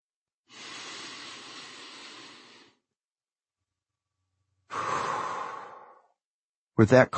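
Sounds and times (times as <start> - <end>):
forceful airy exhale: 0.5 - 2.8, 4.7 - 6.1
long steady deep breath in: 0.5 - 2.8, 4.7 - 6.2
speech: 6.8 - 7.1.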